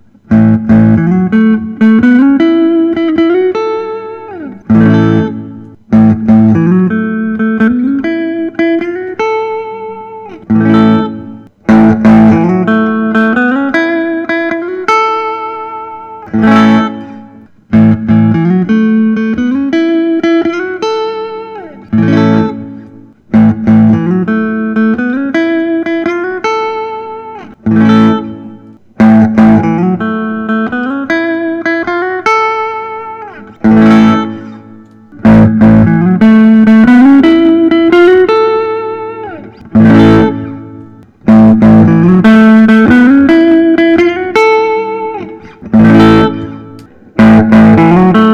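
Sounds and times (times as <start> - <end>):
Artinger semi-hollow guitar: 0.0 - 48.3.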